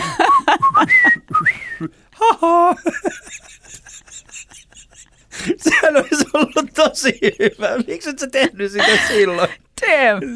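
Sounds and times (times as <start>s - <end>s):
person whistling a tune: 0.0s - 1.9s
laughter: 0.0s - 10.3s
speech: 7.0s - 10.3s.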